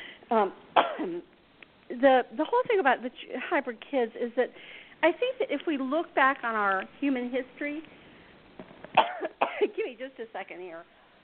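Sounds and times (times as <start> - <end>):
speech: 0.3 - 8.0, 9.2 - 11.0
person coughing: 0.8 - 1.2, 9.0 - 9.7.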